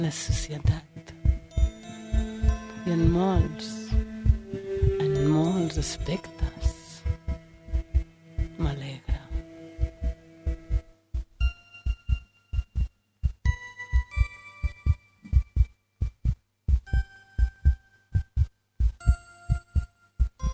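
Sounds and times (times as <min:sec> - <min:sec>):
speech: 0:00.0 - 0:00.9, 0:02.9 - 0:03.8, 0:05.3 - 0:06.4
deep heartbeat thumping in paired beats: 0:00.0 - 0:20.5
faint sustained chiming tones: 0:01.5 - 0:07.4.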